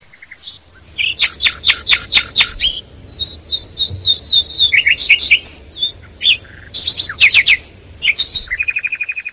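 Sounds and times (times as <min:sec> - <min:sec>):
nightingale singing: 0:00.0 - 0:09.3.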